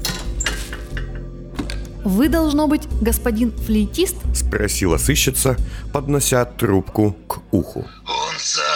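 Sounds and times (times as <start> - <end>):
small metal key dropping into a trash bin: 0.0 - 1.0
speech: 2.0 - 8.6.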